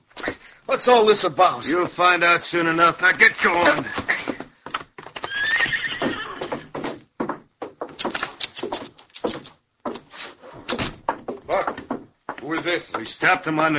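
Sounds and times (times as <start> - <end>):
speech: 0.7 - 4.0, 12.6 - 13.7
horse hooves clip-clopping: 1.2 - 13.7
horse whinnying: 5.2 - 6.8.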